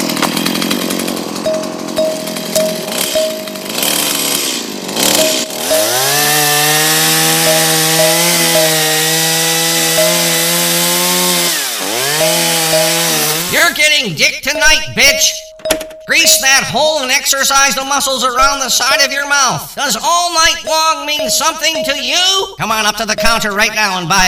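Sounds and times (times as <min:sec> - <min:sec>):
chainsaw idling, revving and cutting a log: 0:00.0 - 0:13.8
speech: 0:14.0 - 0:15.4, 0:16.1 - 0:24.2.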